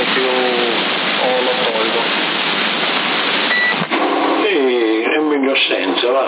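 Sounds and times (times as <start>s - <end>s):
voice over a CB radio transmission with echo effect: 0.0s - 2.2s, 4.1s - 6.2s
constant hissing static on a CB radio: 0.0s - 6.2s.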